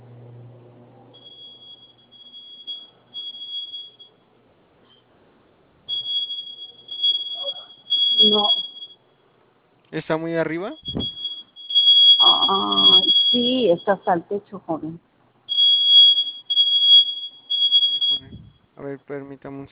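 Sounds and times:
alarm sensor beeping with a thin high-pitched tone: 0:01.2 - 0:04.2, 0:05.9 - 0:09.1, 0:10.5 - 0:14.4, 0:15.5 - 0:18.6
speech: 0:08.3 - 0:08.6, 0:09.9 - 0:11.2, 0:12.3 - 0:15.1, 0:18.8 - 0:19.6.

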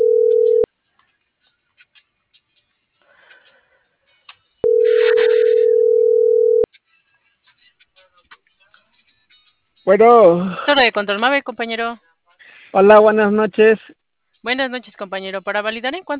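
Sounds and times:
steady mid-pitched telephone tones while dialing: 0:00.0 - 0:00.7, 0:04.6 - 0:06.7
speech: 0:09.9 - 0:12.1, 0:12.7 - 0:16.1.

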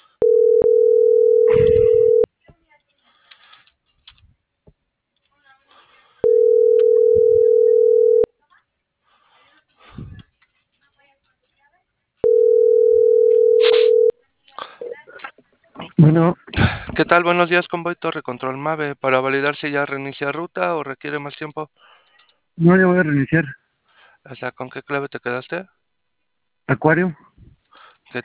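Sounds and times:
telephone line tones on a call: 0:00.2 - 0:02.3, 0:06.2 - 0:08.3, 0:12.2 - 0:14.2
speech: 0:17.1 - 0:22.0, 0:22.6 - 0:23.6, 0:24.2 - 0:25.8, 0:26.7 - 0:27.3.

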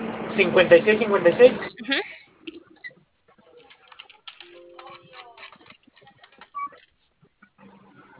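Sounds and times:
speech: 0:00.4 - 0:02.2
soft murmur: 0:00.4 - 0:08.1
typing on a computer keyboard: 0:02.5 - 0:07.0.

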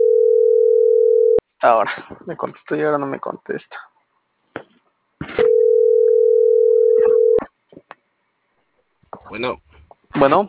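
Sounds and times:
telephone dial tone after a call is cut off: 0:00.0 - 0:01.4, 0:05.4 - 0:07.4
speech: 0:01.6 - 0:03.9, 0:09.3 - 0:10.4.

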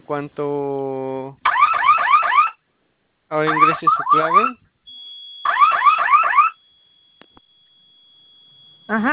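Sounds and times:
speech: 0:00.1 - 0:01.5, 0:03.3 - 0:04.6, 0:08.9 - 0:09.1
electronic alarm giving rapid rising whoops: 0:01.5 - 0:02.6, 0:03.4 - 0:09.1.

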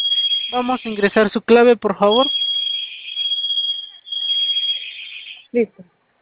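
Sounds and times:
shrill high-pitched building alarm sounding: 0:00.0 - 0:01.4, 0:02.0 - 0:05.5
speech: 0:00.5 - 0:02.4, 0:05.5 - 0:05.9.

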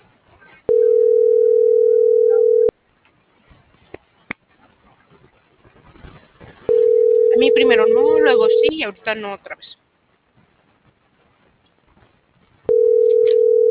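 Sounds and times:
room noise: 0:00.0 - 0:13.6
telephone ringback tone of an unanswered call: 0:00.7 - 0:02.7, 0:06.7 - 0:08.8, 0:12.7 - 0:13.6
speech: 0:07.8 - 0:09.7.

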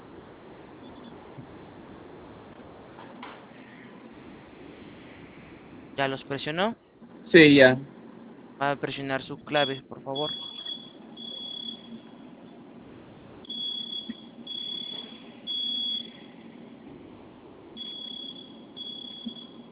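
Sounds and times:
steady hum: 0:00.0 - 0:19.6
speech: 0:06.0 - 0:07.9, 0:08.6 - 0:10.5
high-pitched electronic security alarm beeping: 0:09.5 - 0:12.4, 0:13.4 - 0:16.5, 0:17.8 - 0:19.6.

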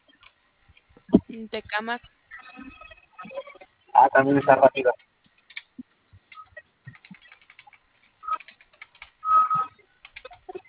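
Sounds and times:
speech: 0:01.4 - 0:02.7, 0:04.0 - 0:05.0
typing on a keyboard: 0:05.5 - 0:05.7, 0:06.3 - 0:10.6.

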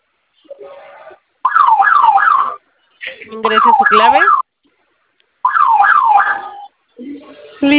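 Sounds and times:
security alarm sounding after panic buttons pressed: 0:01.4 - 0:02.6, 0:03.4 - 0:04.4, 0:05.4 - 0:06.7
speech: 0:03.3 - 0:04.4.

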